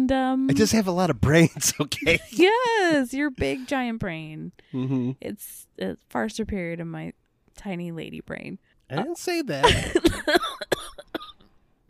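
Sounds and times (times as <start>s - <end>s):
speech: 0.1s - 11.2s
person coughing: 1.6s - 2.3s, 9.6s - 11.8s.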